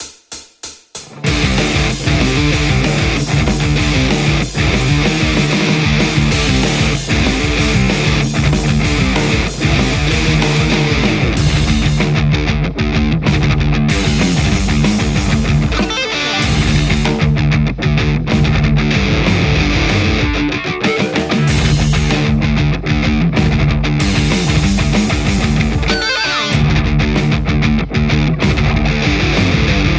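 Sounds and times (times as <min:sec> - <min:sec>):
metal electric guitar: 0:01.0 - 0:29.9.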